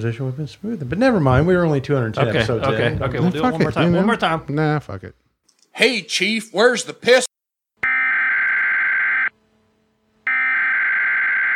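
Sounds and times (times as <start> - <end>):
speech: 0.0 - 5.2, 5.8 - 7.3
loud harsh electronic alarm buzzer: 7.8 - 9.4, 10.2 - 11.5.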